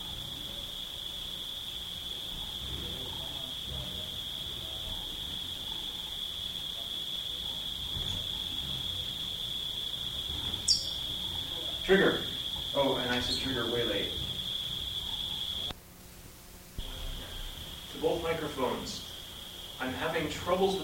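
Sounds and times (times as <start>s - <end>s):
cicadas buzzing: 0.0s - 15.8s, 16.6s - 20.8s
activity: 0.0s - 20.8s
faint low rumbling: 0.0s - 20.8s
speech: 11.9s - 14.2s, 19.8s - 20.8s.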